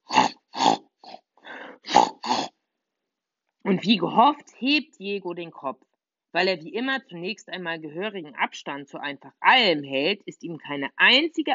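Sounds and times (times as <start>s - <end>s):
wild boar grunting: 0.0s - 1.2s, 1.8s - 2.5s
speech: 3.7s - 11.5s.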